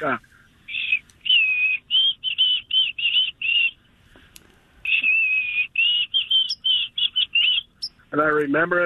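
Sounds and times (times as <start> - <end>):
speech: 0.0 - 0.3, 8.4 - 8.8
white-throated sparrow singing clear high whistled notes: 0.7 - 3.8, 4.8 - 8.1.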